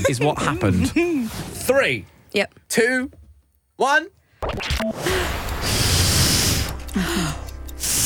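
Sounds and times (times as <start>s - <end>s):
speech: 0.0s - 3.2s, 3.8s - 5.5s
voice imitating blowing up a balloon: 5.0s - 8.0s.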